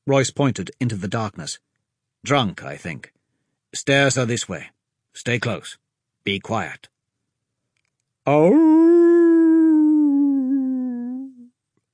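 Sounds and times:
speech: 0:00.1 - 0:06.9, 0:08.2 - 0:09.0
lone wolf howling: 0:08.3 - 0:11.5.

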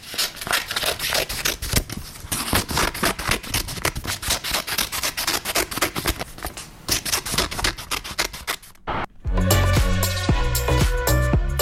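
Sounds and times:
scissors cutting paper: 0:00.0 - 0:08.8
music: 0:09.2 - 0:11.5.

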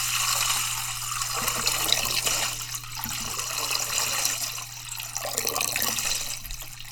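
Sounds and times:
running water like a faucet running into a sink: 0:00.0 - 0:06.9.

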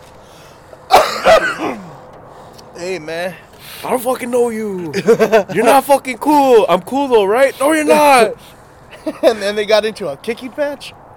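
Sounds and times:
harsh coughing from secondhand weed smoke: 0:00.9 - 0:02.0
raspy throat clearing: 0:00.9 - 0:02.0
speech: 0:01.3 - 0:01.8, 0:02.8 - 0:11.0
laughter: 0:04.8 - 0:05.8, 0:08.9 - 0:09.6.

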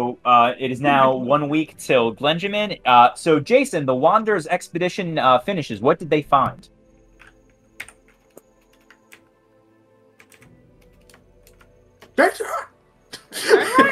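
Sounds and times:
speech: 0:00.0 - 0:06.8, 0:12.2 - 0:12.6
typing on a computer keyboard: 0:07.2 - 0:09.3, 0:10.2 - 0:12.2.

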